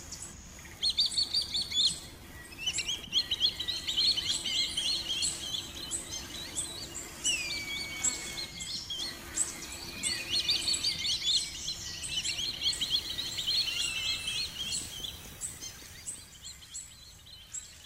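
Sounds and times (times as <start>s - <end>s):
gavião-azul, gavião-tesoura and gavião-urubu hawks calling: 1.0s - 15.0s.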